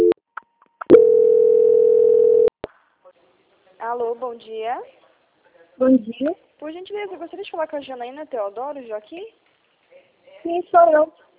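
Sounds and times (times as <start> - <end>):
steady telephone line tone during a call transfer: 0.8 - 2.5
speech: 4.0 - 5.0, 5.8 - 9.4, 10.4 - 11.2.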